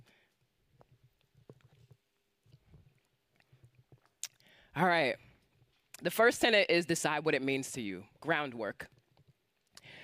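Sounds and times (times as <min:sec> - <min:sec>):
person sipping a drink: 0:01.2 - 0:04.6
speech: 0:04.8 - 0:05.3, 0:06.0 - 0:08.9.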